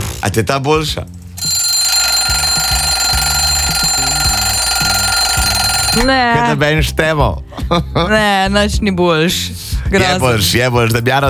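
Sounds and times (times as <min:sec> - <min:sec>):
speech: 0:00.2 - 0:01.6, 0:06.0 - 0:11.2
loud electronic alarm clock ringing: 0:01.4 - 0:06.4.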